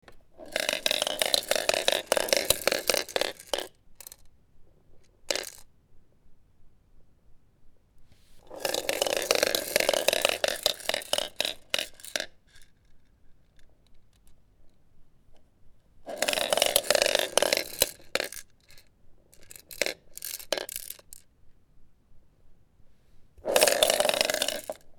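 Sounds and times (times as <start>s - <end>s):
rolling baby rattle toy: 0.4s - 4.2s, 8.5s - 12.3s, 16.1s - 18.8s, 19.4s - 21.2s, 23.4s - 24.8s.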